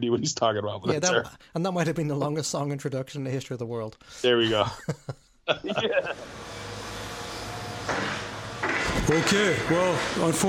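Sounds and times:
speech: 0.0 - 6.7, 9.0 - 10.4
laughter: 4.4 - 6.3
harsh grinding scrape from building demolition next door: 6.2 - 10.4.

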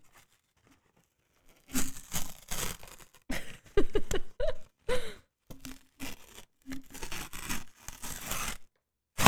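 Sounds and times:
paper being torn up: 1.8 - 3.3, 5.7 - 9.2
laughter: 3.3 - 5.2.

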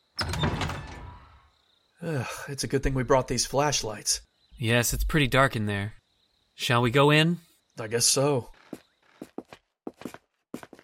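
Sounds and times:
door scraping and creaking open: 0.0 - 1.5
speech: 2.0 - 6.0, 6.6 - 8.6.

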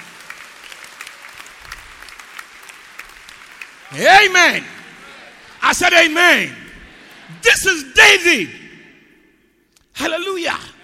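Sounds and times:
audience clapping hands: 0.0 - 7.3
speech: 3.9 - 4.7, 5.7 - 6.6, 7.3 - 8.6, 10.0 - 10.7.

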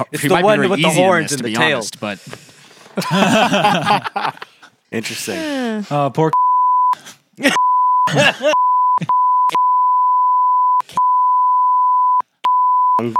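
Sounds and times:
speech: 0.0 - 6.4, 7.4 - 9.1, 13.0 - 13.1
laughter: 2.9 - 4.7, 7.4 - 9.2
steady electronic censor bleep tone: 6.4 - 7.0, 7.6 - 13.1.

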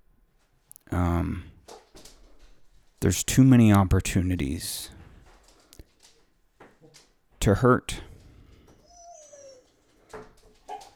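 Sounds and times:
speech: 3.0 - 5.0, 7.4 - 8.1
puppy whining and whimpering: 8.6 - 10.9.

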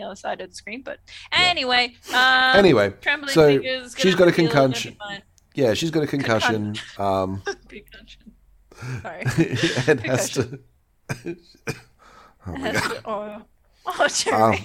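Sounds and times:
speech: 0.0 - 14.6
laughter: 9.1 - 11.4
people coughing: 11.1 - 11.9, 12.5 - 13.1.

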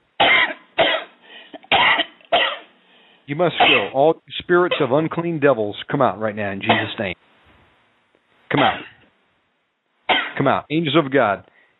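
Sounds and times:
harsh forceful deep coughs: 0.2 - 2.7, 3.6 - 4.0, 6.7 - 7.0, 8.6 - 9.0, 10.1 - 10.5
faint breathy sounds: 1.2 - 1.6, 2.8 - 3.3, 11.5 - 11.7
speech: 3.3 - 7.3, 8.5 - 9.0, 10.4 - 11.5.

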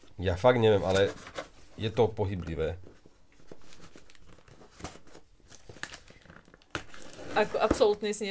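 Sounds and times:
speech: 0.2 - 2.9, 7.4 - 8.3
paper package being torn open with rips and rustling: 3.8 - 7.6.

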